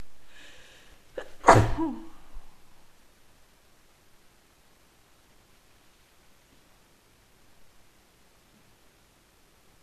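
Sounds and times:
woman with a cold sneezing painfully: 1.2 - 2.3.

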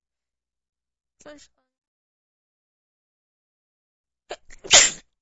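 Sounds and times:
speech: 1.2 - 1.6
person sneezing with hitching breaths: 4.3 - 5.0.

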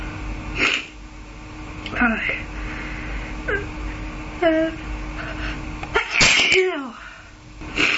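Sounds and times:
speech: 1.9 - 2.6, 3.5 - 3.8, 4.4 - 5.6
person sneezing: 5.9 - 6.7, 7.8 - 7.9.

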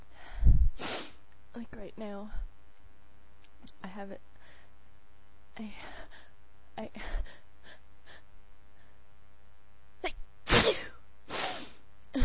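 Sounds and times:
speech: 1.8 - 2.5, 3.8 - 4.3, 5.6 - 6.2, 6.8 - 7.4
person sneezing: 10.5 - 11.8.

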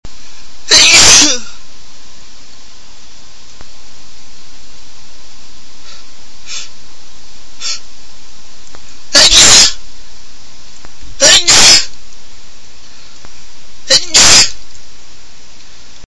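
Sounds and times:
man sneezing hard: 0.7 - 1.6, 9.1 - 9.8, 11.2 - 11.9, 13.9 - 14.6.

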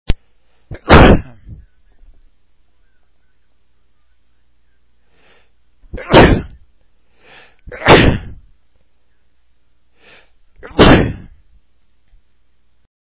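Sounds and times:
man sneezing: 0.7 - 1.5, 6.0 - 6.5, 7.7 - 8.4, 10.1 - 11.3.

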